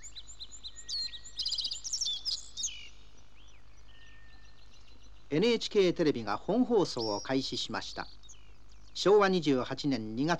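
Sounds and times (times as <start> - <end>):
faint hum of noise: 0.0 - 10.3
small morning songbirds chirping and trilling: 0.0 - 10.3
speech: 5.3 - 8.2, 9.0 - 10.3.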